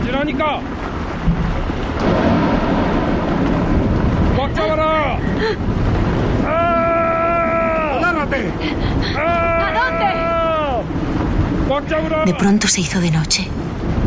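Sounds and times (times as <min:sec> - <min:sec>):
crashing waves of stormy sea: 0:00.0 - 0:12.5
loud wind over stormy sea: 0:00.0 - 0:12.6, 0:13.5 - 0:14.0
speech: 0:00.1 - 0:00.9, 0:04.5 - 0:05.9, 0:08.3 - 0:10.2, 0:11.7 - 0:13.6
people shouting: 0:06.4 - 0:08.3, 0:09.1 - 0:11.0.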